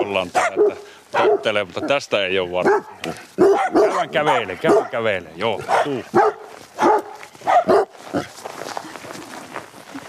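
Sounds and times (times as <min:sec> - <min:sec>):
speech: 0:00.0 - 0:06.6
dog barking outdoors on a walk: 0:00.3 - 0:02.0, 0:02.6 - 0:07.9.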